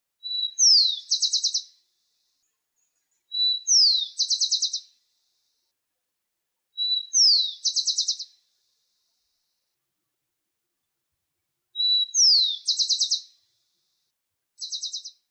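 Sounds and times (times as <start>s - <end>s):
Rufous Collared Sparrow: 0.2s - 5.6s, 6.7s - 9.6s, 11.7s - 15.2s.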